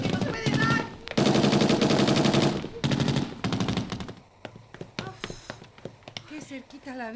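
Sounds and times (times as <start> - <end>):
voices shouting: 0.0 - 1.1
rapid gunfire bursts and single cracks: 0.0 - 4.3
speech: 6.9 - 7.1.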